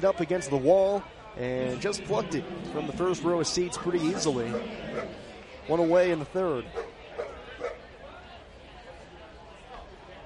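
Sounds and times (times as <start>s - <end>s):
speech: 0.0s - 6.9s
crowd murmur at a baseball ballpark during a game: 1.2s - 10.2s
several dogs barking and yipping at a baseball ballpark: 4.0s - 5.3s, 6.8s - 7.8s.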